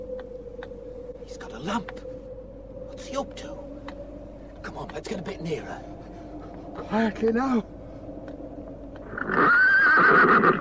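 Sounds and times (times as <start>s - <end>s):
speech: 1.3s - 2.1s, 3.0s - 3.7s, 4.6s - 6.0s, 6.8s - 7.7s
pony whinnying near a graveyard: 9.1s - 10.5s.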